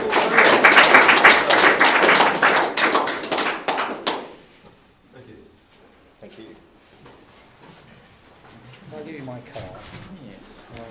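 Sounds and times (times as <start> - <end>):
audience applause: 0.0 - 4.4.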